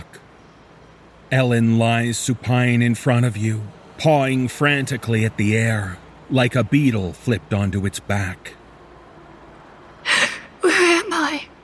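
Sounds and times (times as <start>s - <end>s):
speech: 1.3s - 8.6s
woman gasping in terror: 10.1s - 10.7s
woman's strained frightened vocal cries: 10.1s - 11.1s.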